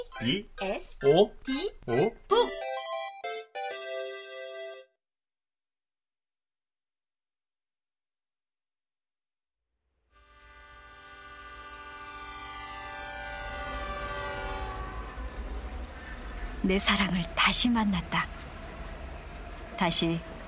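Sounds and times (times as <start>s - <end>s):
speech: 0.2s - 2.7s, 16.7s - 18.4s, 19.8s - 20.3s
bright horn-like tones: 10.2s - 16.4s
moving Swiss train rumbling and humming heard from inside: 10.4s - 20.4s.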